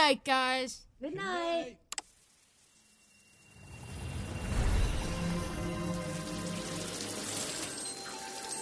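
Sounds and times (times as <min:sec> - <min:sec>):
speech: 0:00.1 - 0:01.8
shower running hot water: 0:03.9 - 0:08.6.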